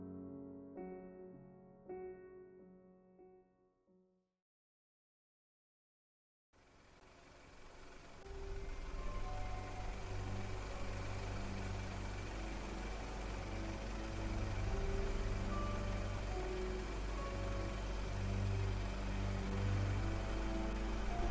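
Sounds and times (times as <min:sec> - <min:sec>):
covered motor car engine idling by a back gate in Ship Street: 0:06.6 - 0:21.3.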